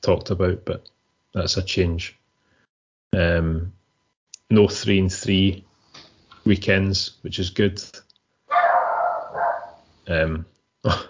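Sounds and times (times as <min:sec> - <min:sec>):
speech: 0:00.0 - 0:02.2, 0:03.1 - 0:03.8, 0:04.5 - 0:05.7, 0:06.4 - 0:08.0, 0:10.1 - 0:11.0
dog barking: 0:08.5 - 0:09.8.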